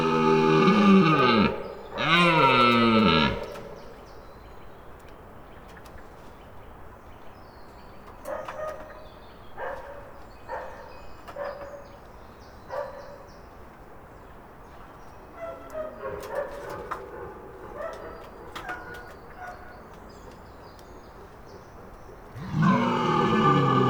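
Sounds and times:
red deer stag bellowing in a garden in Ariège: 0.0s - 3.7s, 22.4s - 23.8s
low steady outdoor hush: 0.0s - 4.0s, 22.2s - 23.8s.

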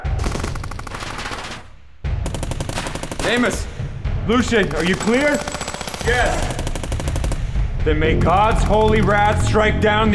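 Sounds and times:
rapid machine-gun fire after an order to open fire: 0.2s - 9.7s
speech: 3.3s - 6.6s, 7.8s - 10.1s.

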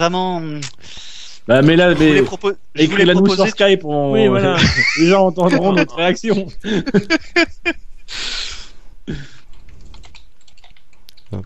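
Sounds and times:
speech: 0.0s - 8.5s, 9.1s - 9.3s
laughter: 1.7s - 9.2s
typing on a computer keyboard: 9.5s - 11.4s.

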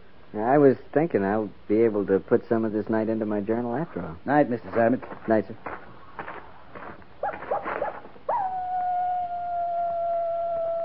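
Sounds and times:
speech: 0.3s - 5.9s
coyote yipping and howling: 7.2s - 10.8s.

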